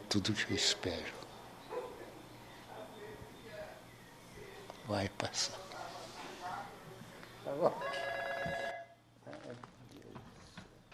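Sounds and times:
speech: 0.1 - 1.2, 4.9 - 5.7, 7.4 - 8.6
telephone ringing with electronic trill: 7.6 - 9.0.

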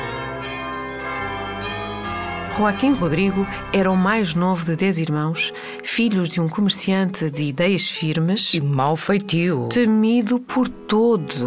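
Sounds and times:
church bells ringing: 0.0 - 7.3
speech: 2.6 - 11.4.

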